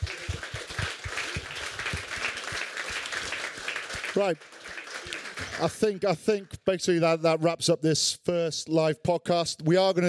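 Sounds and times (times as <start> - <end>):
audience applause: 0.0 - 6.5
speech: 4.2 - 4.6, 5.6 - 10.0.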